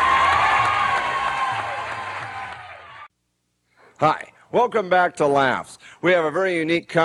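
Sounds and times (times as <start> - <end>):
loud audience applause: 0.0 - 3.1
speech: 4.0 - 7.0.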